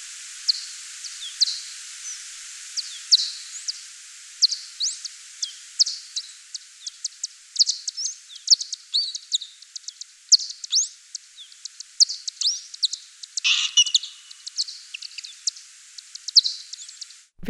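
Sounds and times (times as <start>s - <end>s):
low background hiss: 0.0s - 17.4s
bat echolocation ticks and sweeping pulses: 5.8s - 17.2s.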